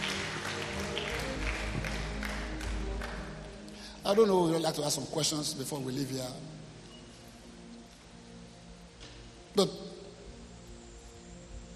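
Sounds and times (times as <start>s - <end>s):
church congregation clapping hands during a service: 0.0s - 4.6s
speech: 4.1s - 6.6s, 9.6s - 9.8s.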